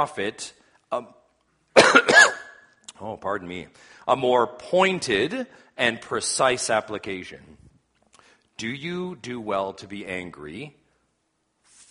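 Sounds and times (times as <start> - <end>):
speech: 0.0 - 1.2, 3.0 - 7.6, 8.6 - 10.8
man coughing during a sermon: 1.8 - 2.6.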